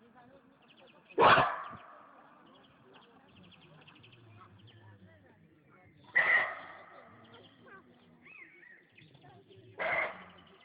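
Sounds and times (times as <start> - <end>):
roe deer barking with rough gruff barks: 6.2 - 8.6, 9.8 - 10.4.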